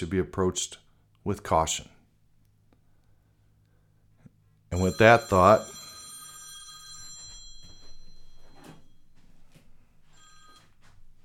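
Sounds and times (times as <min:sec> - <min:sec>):
speech: 0:00.0 - 0:02.0, 0:04.7 - 0:05.8
telephone ringing: 0:04.7 - 0:11.2.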